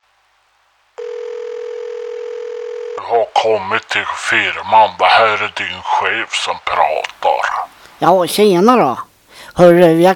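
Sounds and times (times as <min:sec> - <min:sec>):
faint hiss: 0:00.0 - 0:10.1
steady telephone tone from a mobile phone: 0:01.0 - 0:03.1
speech: 0:03.0 - 0:10.1.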